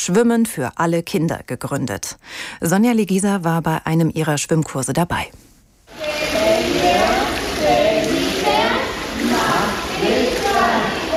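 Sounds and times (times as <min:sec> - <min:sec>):
speech: 0:00.0 - 0:08.3
overlapping children's voices in a swimming pool: 0:05.9 - 0:11.1
swimming pool water sloshing and splattering: 0:05.9 - 0:11.1.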